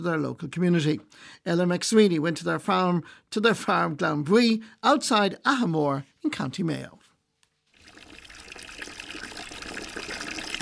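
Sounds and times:
speech: 0.0 - 7.0
water pouring into a big old cider bucket for calves: 7.7 - 10.6.

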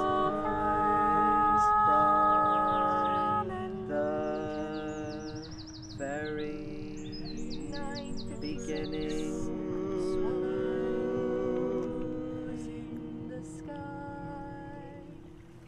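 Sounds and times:
steady low hum: 0.0 - 15.6
birds chirping and trilling outdoors in an overlapping chorus: 1.1 - 10.3.

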